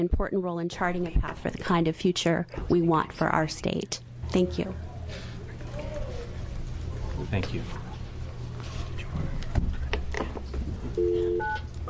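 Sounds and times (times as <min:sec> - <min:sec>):
speech: 0:00.0 - 0:05.3, 0:07.2 - 0:07.8
low steady noise: 0:00.0 - 0:11.8
telephone keypad beeps: 0:11.0 - 0:11.8.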